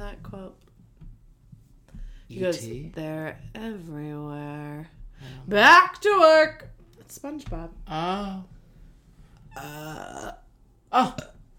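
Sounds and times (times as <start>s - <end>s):
speech: 2.3s - 8.6s, 9.6s - 11.4s
loud croaky burp with gurgly tail: 9.5s - 11.4s.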